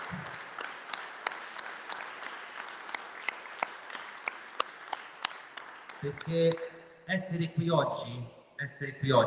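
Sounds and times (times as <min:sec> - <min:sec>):
audience applause: 0:00.0 - 0:06.7
speech: 0:06.0 - 0:09.2.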